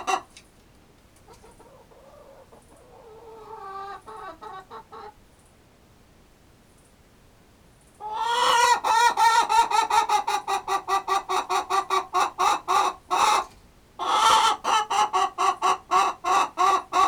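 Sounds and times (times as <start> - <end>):
chicken clucking: 0.0 - 0.5, 1.2 - 5.3, 8.0 - 17.0.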